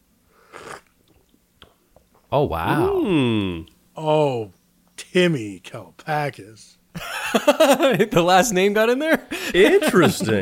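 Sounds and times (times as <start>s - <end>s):
person slurping a whiskey sour cocktail: 0.4s - 1.2s
speech: 2.3s - 4.6s, 5.2s - 10.4s
laughter: 7.0s - 8.2s, 9.1s - 10.4s.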